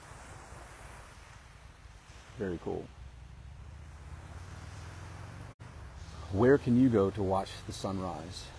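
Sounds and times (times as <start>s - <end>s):
gusty wind across the microphone: 0.0s - 7.4s
ocean waves washing onto the shore in the morning: 0.0s - 8.5s
speech: 2.4s - 3.0s, 6.3s - 8.5s.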